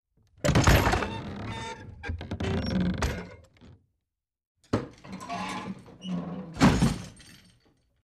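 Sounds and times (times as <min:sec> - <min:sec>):
wooden door creaking open and closed: 0:00.3 - 0:03.9, 0:04.7 - 0:07.4.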